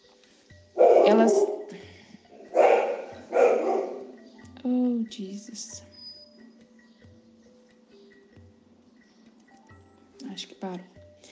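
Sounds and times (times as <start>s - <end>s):
dog barking: 0.8s - 1.7s, 2.4s - 4.2s
speech: 1.1s - 1.6s, 5.1s - 6.0s, 10.4s - 11.0s.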